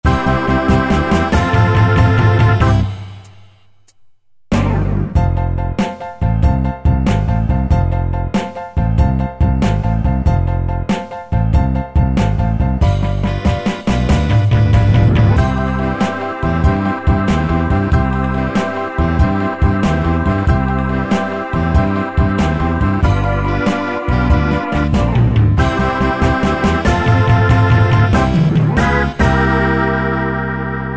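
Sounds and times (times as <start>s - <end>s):
six-eight R&B preset style on a Yamaha QY70: 0.0s - 30.8s.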